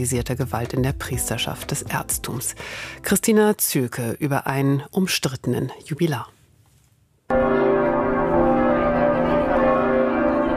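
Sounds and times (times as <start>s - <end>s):
speech: 0.0s - 6.4s
cathedral church bells ringing: 7.3s - 10.5s.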